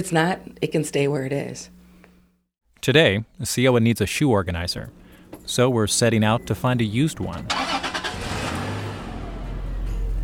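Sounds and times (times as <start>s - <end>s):
speech: 0.0s - 1.8s, 2.8s - 7.8s
engine of a used car rumbling while driving: 6.3s - 10.2s.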